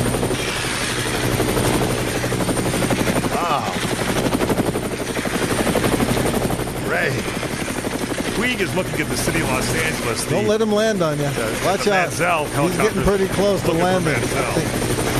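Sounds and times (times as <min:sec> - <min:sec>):
helicopter rotor chopping: 0:00.0 - 0:15.1
speech: 0:08.5 - 0:14.8.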